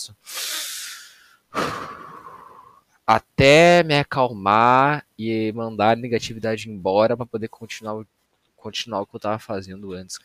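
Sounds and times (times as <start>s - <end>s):
speech: 0.0s - 0.4s, 3.1s - 10.2s
slow deep inhale and exhale: 0.3s - 2.8s.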